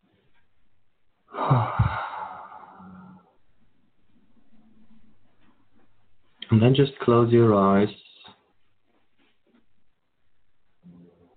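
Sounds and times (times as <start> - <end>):
deep breath exhaled with a soft audible sighing noise: 1.3 - 3.3
faint breathing: 1.3 - 5.8
speech: 1.4 - 2.0, 6.5 - 8.0.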